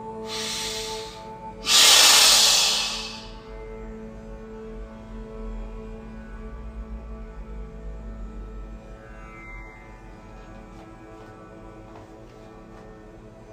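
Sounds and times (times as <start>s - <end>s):
short inhalation and forceful exhalation: 0.2s - 3.4s.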